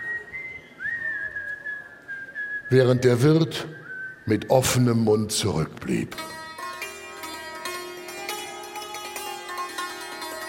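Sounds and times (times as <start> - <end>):
cheerful whistling from someone walking away: 0.0 - 2.7, 3.7 - 4.3
speech: 2.7 - 6.4.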